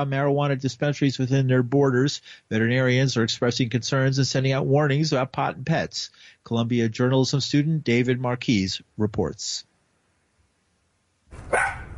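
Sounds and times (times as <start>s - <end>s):
speech: 0.0s - 9.7s, 11.3s - 11.8s
faint hum: 0.0s - 11.9s
miniature poodle barking: 11.4s - 11.9s.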